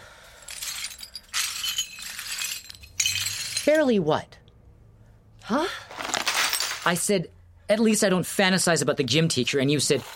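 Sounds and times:
broken glass shards clinking and scraping while being picked up: 0.4 - 3.8, 6.0 - 7.0
speech: 3.7 - 4.4, 5.5 - 5.9, 6.8 - 10.1.

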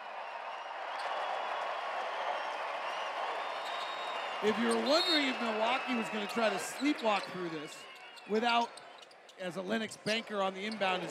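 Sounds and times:
large crowd in an arena applauding: 0.0 - 8.4
faint whistles from arena crowd: 3.3 - 6.3
speech: 4.4 - 8.8, 9.4 - 11.0.

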